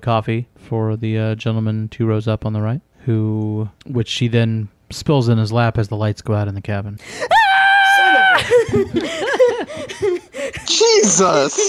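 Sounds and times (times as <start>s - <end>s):
speech: 0.0s - 7.4s, 8.5s - 9.4s, 10.7s - 11.6s
person screaming high-pitched: 7.2s - 8.6s
excited laughing vocal bursts and chatter: 7.9s - 11.6s.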